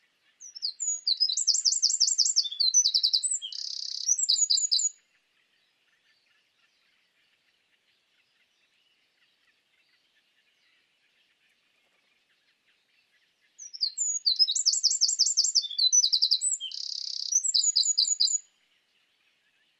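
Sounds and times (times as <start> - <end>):
Eurasian wren Troglodytes troglodytes indigenus singing: 0.4 - 5.0, 13.6 - 18.5.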